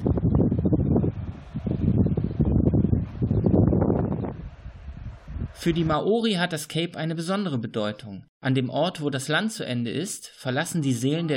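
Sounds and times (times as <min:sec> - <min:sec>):
strong wind roaring over a rough sea: 0:00.0 - 0:06.0
speech: 0:05.6 - 0:11.3.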